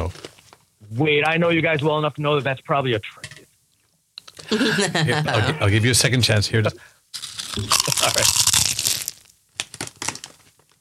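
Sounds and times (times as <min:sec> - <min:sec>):
speech: 0:00.9 - 0:03.3, 0:04.5 - 0:06.9, 0:07.6 - 0:08.4
laughter: 0:04.5 - 0:05.8
paper being crumpled up: 0:07.2 - 0:10.7.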